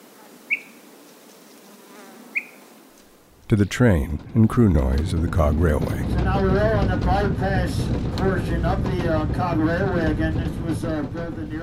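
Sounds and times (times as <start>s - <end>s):
insects buzzing on a mountaintop in the White Mountains: 0.0s - 3.5s
speech: 3.5s - 11.6s.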